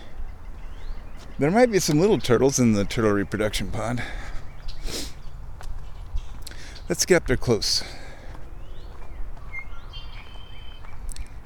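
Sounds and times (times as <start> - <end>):
speech: 1.4 - 4.2, 6.9 - 8.0
red-winged blackbird whistled calls: 9.4 - 10.9.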